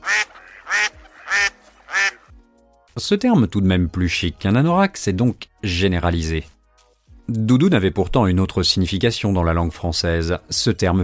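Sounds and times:
duck quacking: 0.0 - 2.3
speech: 3.0 - 6.6, 7.3 - 11.0.

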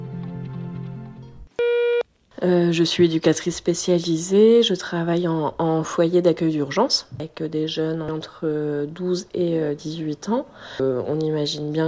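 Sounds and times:
electronic voicemail beep: 1.6 - 2.0
speech: 2.4 - 11.8.

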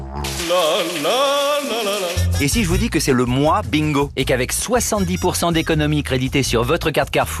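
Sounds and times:
ice-cold shower water spraying: 0.2 - 3.1
speech: 2.4 - 7.3.

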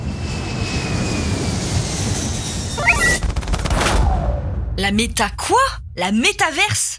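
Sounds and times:
jet airliner engines roaring with high turbine whine: 0.0 - 4.4
speech: 4.8 - 6.9.

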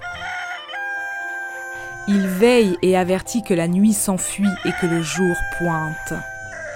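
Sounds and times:
rooster crowing: 0.0 - 2.4, 4.4 - 6.7
speech: 2.0 - 6.3.

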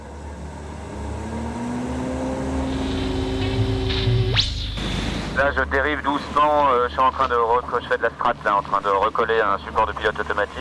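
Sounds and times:
navy patrol aircraft flying overhead: 0.0 - 10.5
sudden sharp whine: 2.5 - 5.7
speech: 5.4 - 10.5.

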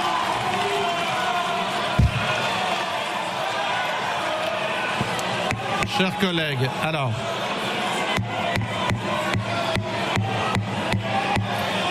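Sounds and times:
members shouting and jeering in a packed parliamentary chamber: 0.0 - 11.8
speech: 6.0 - 7.4
rhythmic pounding or clapping: 8.2 - 11.6.

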